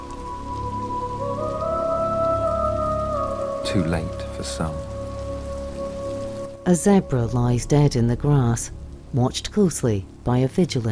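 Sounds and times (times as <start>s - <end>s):
heavy rain in the southern Serengeti: 0.0s - 10.9s
speech: 3.6s - 4.9s, 6.6s - 10.9s.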